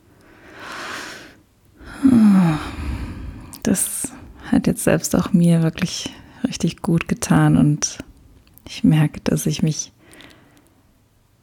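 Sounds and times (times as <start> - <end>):
deep slow breath as a calming exercise: 0.2 - 4.5
speech: 2.0 - 2.7, 3.6 - 8.1, 8.7 - 10.0.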